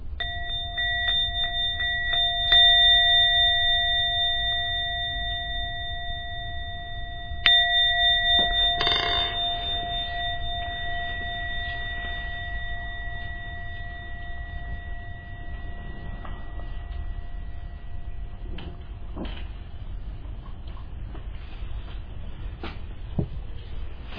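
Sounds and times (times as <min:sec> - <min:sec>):
meditation bell ringing: 0:00.0 - 0:19.9.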